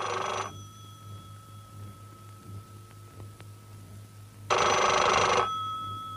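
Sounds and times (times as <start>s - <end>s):
telephone bell ringing on a desk: 0.0s - 1.2s, 4.5s - 6.1s
quiet steady hum: 0.0s - 6.1s.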